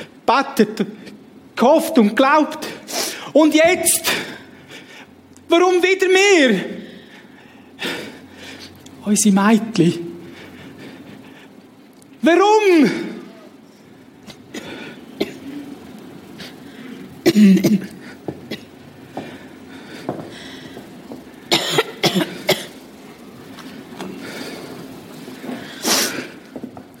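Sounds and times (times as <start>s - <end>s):
speech: 0.3s - 4.4s, 5.5s - 6.8s, 9.0s - 10.1s, 12.2s - 13.1s
harsh coughs: 14.2s - 15.7s, 17.2s - 18.8s, 21.5s - 22.8s.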